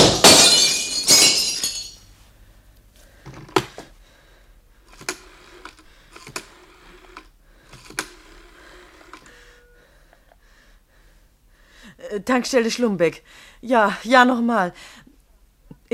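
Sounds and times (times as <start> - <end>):
broken pieces of window glass clinking: 0.0 - 2.0
falling shards of window glass tinkling: 0.0 - 2.0
window glass smashing: 0.0 - 2.0
speech: 12.2 - 15.0.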